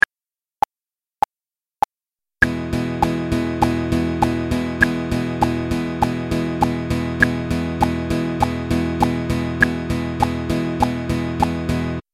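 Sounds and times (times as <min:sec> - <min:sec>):
12 bar blues music in straight eighths: 0:02.4 - 0:12.0.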